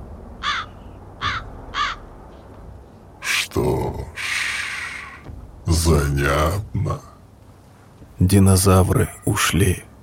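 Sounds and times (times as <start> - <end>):
raven cawing after landing on the ground: 0.4 - 2.5, 4.1 - 5.3
speech: 5.8 - 7.1, 8.2 - 9.9.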